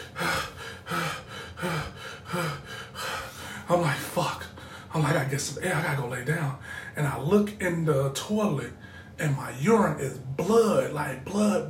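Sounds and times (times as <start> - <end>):
voice imitating heavy exhausted breathing: 0.0 - 3.7, 4.5 - 4.9, 6.6 - 7.0, 8.8 - 9.2
speech: 5.2 - 11.6.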